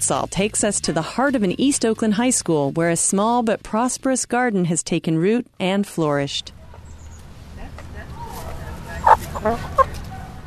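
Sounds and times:
speech: 0:00.1 - 0:06.6, 0:09.4 - 0:09.9
chickens clucking at a high school garden: 0:08.0 - 0:10.4.

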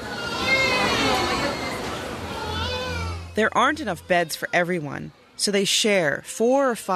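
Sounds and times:
newborns wailing and whimpering in a crowded hospital maternity ward in the Philippines: 0:00.0 - 0:05.1
low murmur of adult voices in a hospital maternity ward: 0:00.0 - 0:06.9
speech: 0:03.4 - 0:06.9.

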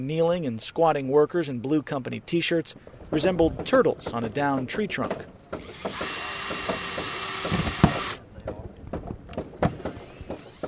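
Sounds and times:
speech: 0:00.0 - 0:06.1
power drill whining on a boardwalk: 0:05.5 - 0:08.2, 0:09.6 - 0:10.6.

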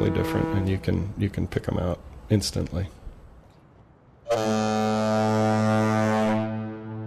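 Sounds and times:
bridge foghorn blast: 0:00.0 - 0:01.1, 0:04.3 - 0:07.0
speech: 0:00.0 - 0:03.0.

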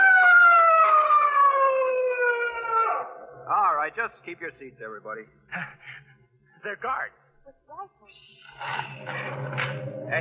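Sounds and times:
police siren wailing: 0:00.0 - 0:03.5
speech: 0:03.9 - 0:10.1.

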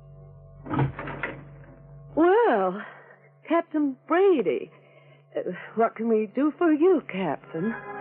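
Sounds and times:
steady low hum: 0:00.0 - 0:07.8
door pulled open with latch clunk and rattle: 0:00.7 - 0:01.5
speech: 0:03.5 - 0:07.9.

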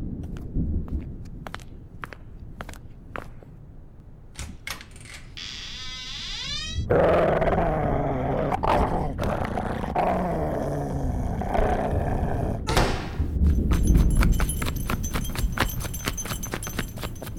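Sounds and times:
slow footsteps: 0:00.0 - 0:04.6, 0:13.0 - 0:17.3
door creaking open: 0:04.4 - 0:07.1, 0:12.6 - 0:14.0
dog growling: 0:06.9 - 0:12.7.

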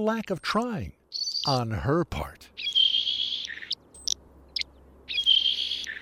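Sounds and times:
speech: 0:00.0 - 0:02.7
saltmarsh sparrow singing: 0:01.0 - 0:01.7, 0:02.5 - 0:06.0.

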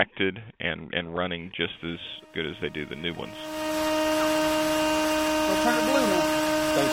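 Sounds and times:
speech: 0:00.0 - 0:04.0, 0:05.5 - 0:06.1, 0:06.8 - 0:06.9
bench machine whine sharpening drill bits in a school bus transportation shop: 0:02.3 - 0:06.9.

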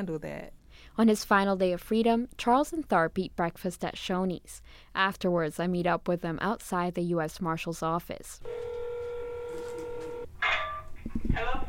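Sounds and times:
speech: 0:00.0 - 0:08.7
telephone dialing tones: 0:08.4 - 0:10.3.

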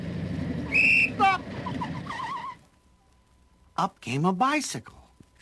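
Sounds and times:
motorcycle engine rumbling and revving: 0:00.0 - 0:02.5
speech: 0:03.8 - 0:05.0.

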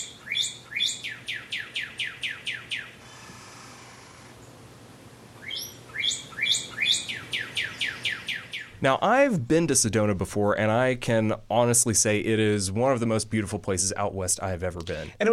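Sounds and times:
bird chirping in early morning: 0:00.0 - 0:03.0, 0:05.4 - 0:08.8
faint hiss: 0:00.0 - 0:15.3
speech: 0:08.8 - 0:15.3.

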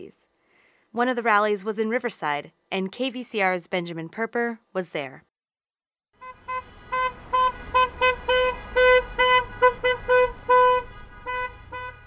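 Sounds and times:
speech: 0:00.0 - 0:00.3, 0:00.9 - 0:05.3
car horns honking from a caravan of healthcare workers and supporters at a rally outside a hospital: 0:06.2 - 0:12.0.

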